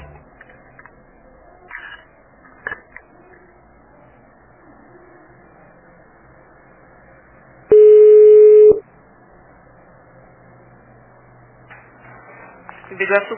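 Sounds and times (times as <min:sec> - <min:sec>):
telephone line tone after a dropped call to a transport company: 0:07.7 - 0:08.8.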